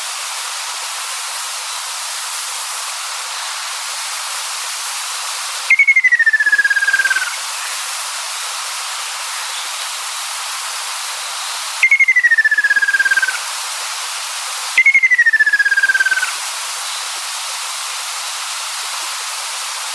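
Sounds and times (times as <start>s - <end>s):
constant background hiss: 0.0s - 19.9s
Ruddy kingfisher giving falling rattling trills: 5.7s - 7.4s, 11.8s - 13.4s, 14.8s - 16.4s.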